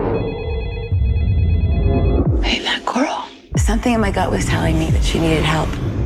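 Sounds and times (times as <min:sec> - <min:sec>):
mobile phone ringing with electronic ringtone: 0:00.1 - 0:02.3
speech: 0:03.7 - 0:05.9.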